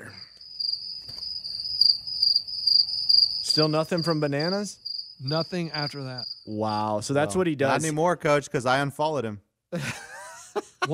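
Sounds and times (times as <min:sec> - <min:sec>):
high-pitched cricket chirp sound effect: 0:00.0 - 0:08.0
speech: 0:03.6 - 0:10.0
laughter: 0:09.8 - 0:10.9.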